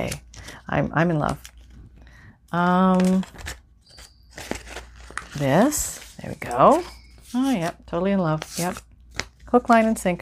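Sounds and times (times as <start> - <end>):
speech: 0.0 - 1.5, 2.5 - 3.5, 5.4 - 8.9, 9.5 - 10.2
paper crinkling as it is folded and creased: 2.9 - 9.9.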